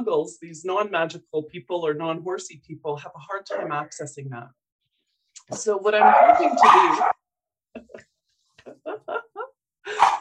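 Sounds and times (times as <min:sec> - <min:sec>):
speech: 0:00.0 - 0:04.6, 0:05.4 - 0:07.2, 0:08.7 - 0:09.3
dog barking: 0:06.0 - 0:07.2, 0:09.9 - 0:10.2.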